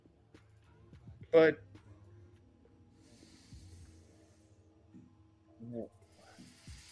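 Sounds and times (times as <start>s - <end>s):
speech: 1.3s - 1.7s
snake hissing: 2.9s - 4.7s, 6.0s - 6.9s.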